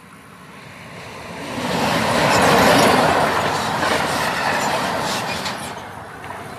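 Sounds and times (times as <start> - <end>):
train rumbling past in a periurban area: 0.8 - 6.5
train wheels clattering on the rails: 1.6 - 6.5.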